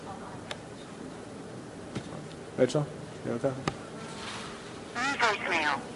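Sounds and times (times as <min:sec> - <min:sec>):
speech: 0:02.6 - 0:03.8, 0:05.3 - 0:05.9
steady hiss: 0:04.9 - 0:05.9
phone playing a recorded voicemail greeting: 0:05.0 - 0:05.8.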